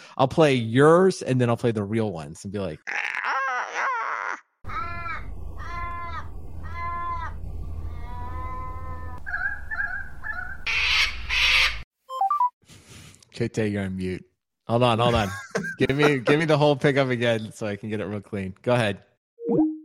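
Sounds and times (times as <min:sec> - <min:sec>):
speech: 0:00.2 - 0:03.0, 0:13.4 - 0:19.6
Australian raven calls: 0:02.9 - 0:11.8
steady low rumble: 0:05.2 - 0:09.3
laughter: 0:15.0 - 0:16.6.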